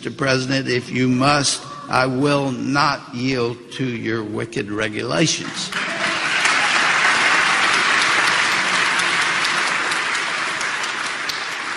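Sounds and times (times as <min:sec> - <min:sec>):
speech: 0:00.0 - 0:05.9
sustained applause from a large audience: 0:05.4 - 0:11.7.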